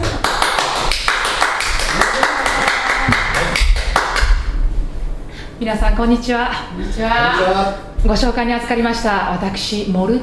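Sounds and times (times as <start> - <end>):
group of people clapping: 0.0 - 4.6
speech: 5.6 - 10.2.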